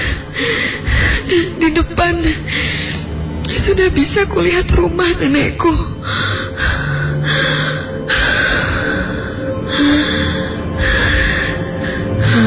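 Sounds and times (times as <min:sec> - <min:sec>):
person heavily panting, struggling to catch their breath: 0:00.0 - 0:01.6, 0:06.0 - 0:12.4
speech: 0:01.4 - 0:02.7, 0:03.6 - 0:06.2.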